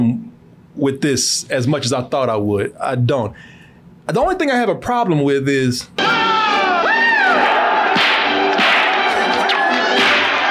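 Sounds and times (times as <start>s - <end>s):
speech: 0.0s - 6.1s
person giving a rising cry: 6.0s - 7.4s
crowd shouting and yelling: 6.0s - 10.4s
whip cracks in a film fight scene: 8.0s - 10.4s.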